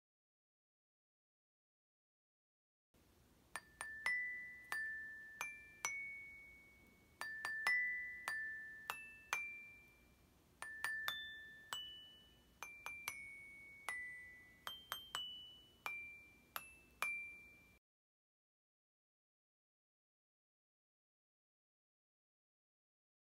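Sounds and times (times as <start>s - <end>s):
bells instrument: 3.6s - 17.8s.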